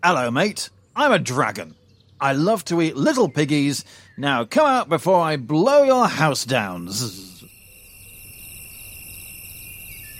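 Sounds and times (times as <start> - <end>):
speech: 0.0 - 7.3
chorus of crickets chirping in rapid trills: 5.8 - 10.1.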